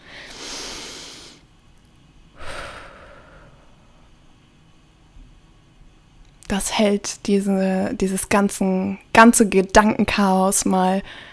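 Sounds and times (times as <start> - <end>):
deep audible breathing in and out: 0.0 - 1.5, 2.3 - 4.4
speech: 6.5 - 11.3.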